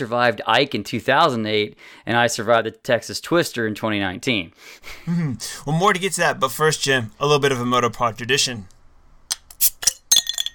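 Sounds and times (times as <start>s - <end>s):
speech: 0.0s - 8.8s, 9.6s - 9.8s
bottle cap dropping and rattling in a glass: 9.4s - 10.5s.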